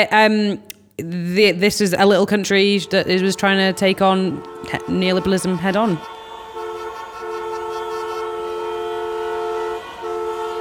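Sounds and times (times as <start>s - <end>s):
speech: 0.0s - 6.1s
faint street noise: 0.0s - 10.6s
car horn blaring in street traffic: 2.8s - 10.6s.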